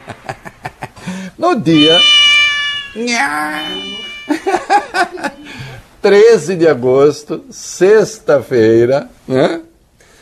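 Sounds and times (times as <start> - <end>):
speech: 0.0 - 0.5, 1.3 - 2.1, 3.0 - 5.4, 6.0 - 9.6
laughter: 0.0 - 1.2, 4.3 - 5.6
black cat meowing and yowling: 1.8 - 4.4.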